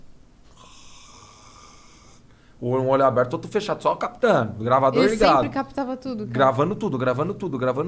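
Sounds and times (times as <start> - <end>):
person faking a snore while pretending to sleep: 0.5 - 2.2
speech: 2.6 - 7.8.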